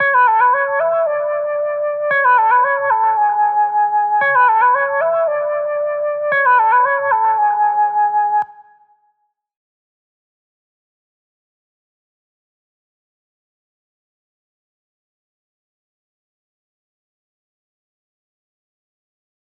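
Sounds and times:
114 BPM F sharp minor trap melody lead loop: 0.0 - 8.7.

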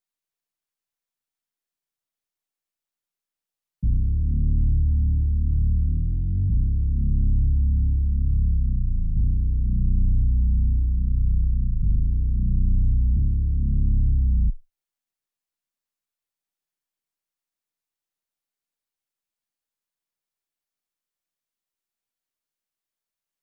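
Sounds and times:
bass loop in F sharp minor: 3.8 - 14.6.

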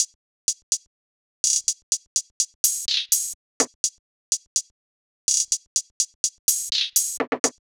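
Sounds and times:
125 BPM hi-hat loop: 2.4 - 4.7, 5.3 - 7.6.

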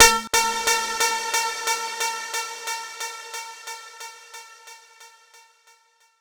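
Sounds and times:
techno effect loop: 0.0 - 1.9.

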